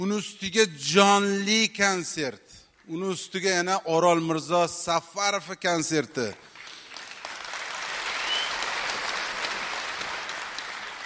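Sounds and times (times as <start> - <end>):
speech: 0.0 - 6.5
audience applause at a live concert: 6.5 - 11.0.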